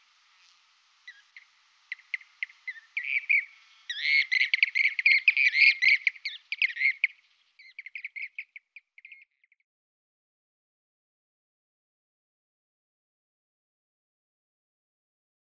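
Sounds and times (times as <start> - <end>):
Blue-cheeked bee-eater song with chirps and rolling trills: 1.0 - 9.6.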